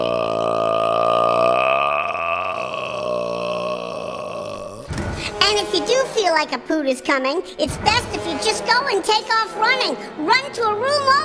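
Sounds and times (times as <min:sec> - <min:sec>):
long loud burp: 0:00.0 - 0:04.9
speech: 0:05.8 - 0:11.2.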